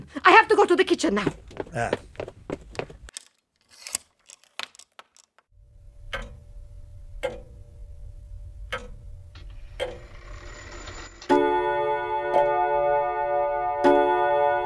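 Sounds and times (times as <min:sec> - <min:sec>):
speech: 0:00.1 - 0:02.0
low hum: 0:05.6 - 0:11.2
clock ticking: 0:06.0 - 0:10.3
clock striking six o'clock with a ringing chime: 0:09.8 - 0:14.6.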